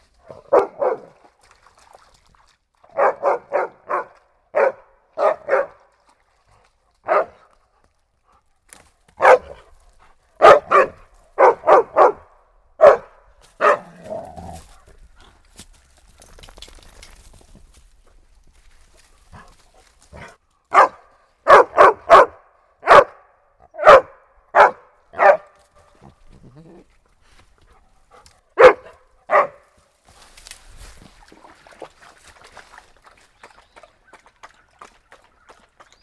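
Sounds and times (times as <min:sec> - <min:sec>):
faint trickling water of a stream: 0:00.2 - 0:03.0, 0:05.0 - 0:08.6, 0:25.8 - 0:29.0, 0:29.9 - 0:36.0
dog barking at a stream on a creek trail hike: 0:00.3 - 0:01.2, 0:02.9 - 0:05.8, 0:07.0 - 0:07.4, 0:09.2 - 0:09.6, 0:10.4 - 0:13.9, 0:20.7 - 0:25.6, 0:28.6 - 0:29.7.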